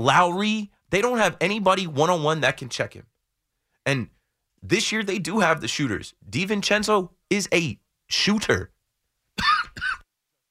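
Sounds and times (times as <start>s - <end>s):
speech: 0.0s - 3.1s, 3.8s - 8.8s, 9.4s - 10.0s
person coughing: 9.4s - 10.1s.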